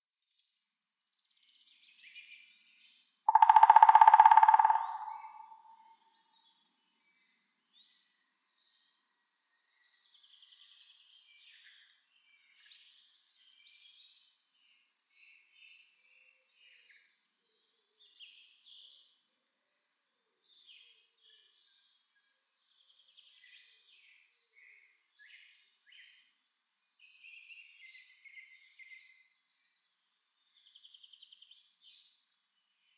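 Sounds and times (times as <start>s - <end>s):
woodpeckers Picidae: 3.3s - 5.8s.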